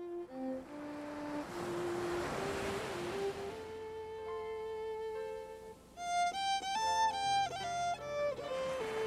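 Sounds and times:
gentle melodic music track: 0.0s - 9.0s
ocean wave washing on the shore of Maine: 0.1s - 4.8s, 8.5s - 9.0s.

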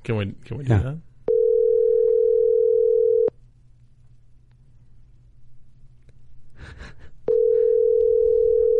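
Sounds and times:
speech: 0.0s - 1.1s
ringback tone of an outgoing phone call ringing unanswered: 1.3s - 3.3s, 7.3s - 8.7s.

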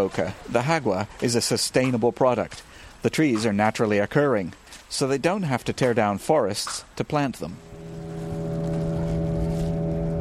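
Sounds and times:
speech: 0.0s - 7.7s
boat motor droning with harmonic whine while motoring upstream on a river: 7.6s - 10.2s.

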